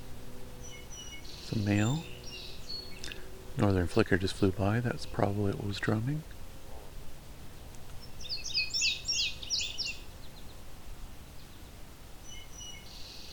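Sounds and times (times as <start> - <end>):
indigo bunting singing: 0.0 - 6.4, 7.5 - 13.3
low outdoor hum: 0.0 - 13.3
speech: 1.5 - 2.1, 3.6 - 6.3.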